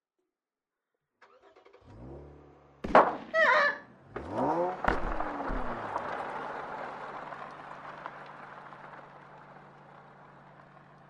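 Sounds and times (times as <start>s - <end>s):
car engine revving: 1.3s - 11.0s
car hitting a person: 2.8s - 3.4s, 4.1s - 6.8s.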